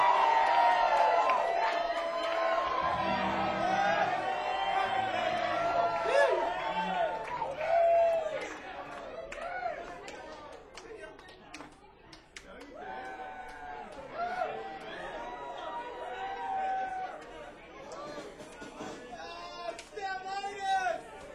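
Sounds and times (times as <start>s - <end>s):
large live concert audience screaming and cheering: 0.0s - 9.9s, 12.8s - 17.4s.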